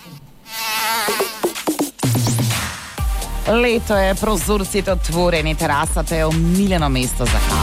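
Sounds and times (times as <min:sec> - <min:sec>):
high whining mosquito buzz: 0:00.0 - 0:02.0
speech: 0:03.5 - 0:07.6.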